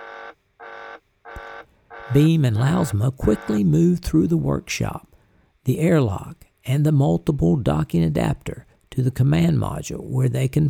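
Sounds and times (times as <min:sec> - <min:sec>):
caution and warning alarm aboard the Skylab space station signalling a leak: 0:00.0 - 0:03.7
speech: 0:02.1 - 0:10.6.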